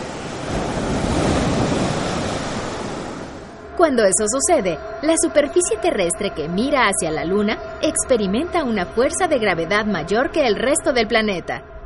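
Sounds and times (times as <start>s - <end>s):
ocean surf: 0.0s - 4.9s
speech: 3.8s - 11.7s.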